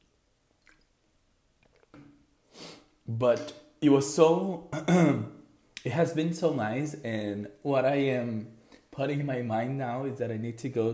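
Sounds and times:
person sipping and swallowing water: 0.6 - 1.0
speech: 3.2 - 10.9.

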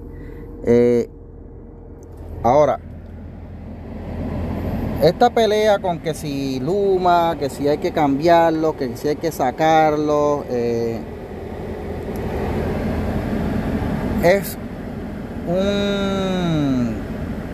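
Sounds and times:
van air conditioning blowing at full: 0.0 - 17.5
van engine just started and idling: 0.0 - 17.5
speech: 0.6 - 1.2, 5.0 - 11.2, 14.2 - 14.6, 15.5 - 16.7.

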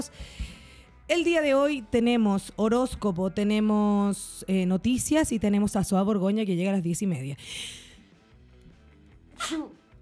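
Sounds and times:
speech: 1.1 - 7.8, 9.4 - 9.8
person sneezing: 9.4 - 9.8.

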